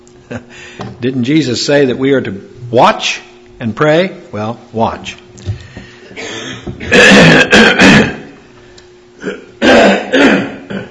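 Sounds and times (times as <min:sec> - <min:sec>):
speech: 0:00.3 - 0:05.2
speaker clearing the throat before a Bible study: 0:06.1 - 0:08.4, 0:09.2 - 0:10.9.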